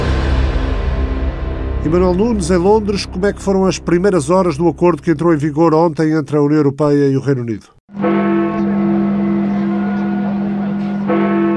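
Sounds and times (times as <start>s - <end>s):
large clock tower bell tolling: 0.0s - 5.2s, 7.9s - 11.5s
speech: 1.8s - 8.1s.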